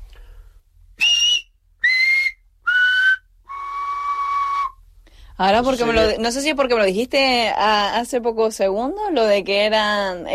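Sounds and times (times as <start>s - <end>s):
whistled vowel tones in a whistled language: 1.0s - 4.8s
speech: 5.4s - 10.3s.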